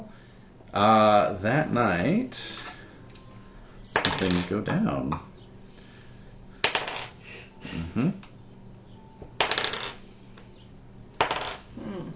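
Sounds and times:
speech: 0:00.8 - 0:02.6, 0:04.2 - 0:05.3, 0:08.0 - 0:08.3
dice rattling on a hard surface: 0:04.0 - 0:04.5, 0:06.6 - 0:07.2, 0:09.4 - 0:10.0, 0:11.2 - 0:11.7.

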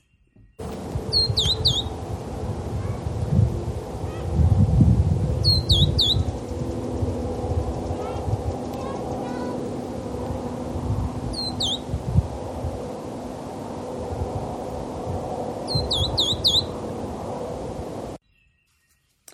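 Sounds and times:
low rumble: 0:00.6 - 0:18.2
verdin high thin chipping calls: 0:01.1 - 0:02.0, 0:05.4 - 0:06.5, 0:11.4 - 0:11.9, 0:15.7 - 0:16.8.

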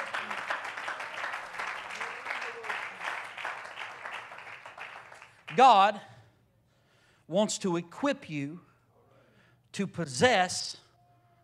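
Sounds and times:
audience clapping hands in praise: 0:00.0 - 0:06.0
speech: 0:05.6 - 0:06.1, 0:07.3 - 0:08.7, 0:09.8 - 0:10.8.

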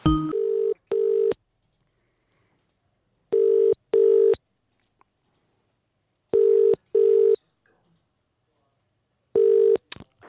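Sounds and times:
telephone double ringing tone over the line: 0:00.1 - 0:01.4, 0:03.3 - 0:04.4, 0:06.4 - 0:07.4, 0:09.4 - 0:09.8.

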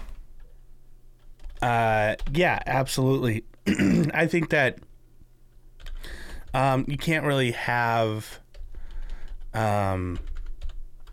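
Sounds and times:
keys being pressed on a computer keyboard: 0:01.2 - 0:02.4, 0:05.8 - 0:06.6, 0:08.5 - 0:11.1
speech: 0:01.6 - 0:04.9, 0:06.0 - 0:08.4, 0:09.5 - 0:10.3.

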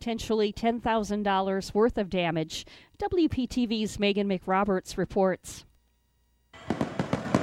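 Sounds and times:
speech: 0:00.0 - 0:05.7
fireworks crackling and banging during a 4th of July celebration: 0:06.6 - 0:07.4.

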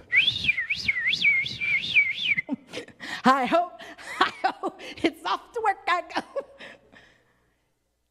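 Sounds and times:
person whistling a bright bouncy tune: 0:00.0 - 0:02.6
speech: 0:03.2 - 0:03.7, 0:04.9 - 0:06.3.

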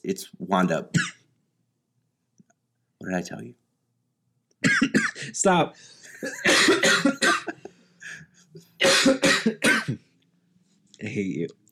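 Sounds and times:
speech: 0:00.0 - 0:01.1, 0:03.0 - 0:03.6, 0:04.6 - 0:10.0, 0:11.0 - 0:11.6
harsh hacking coughing fits: 0:00.9 - 0:01.2, 0:04.6 - 0:05.4, 0:06.1 - 0:10.1.

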